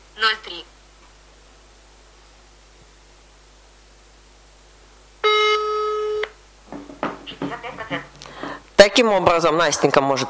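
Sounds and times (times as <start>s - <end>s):
speech: 0.2s - 0.8s, 9.0s - 10.2s
telephone ringing tone of an outgoing call: 5.2s - 6.3s.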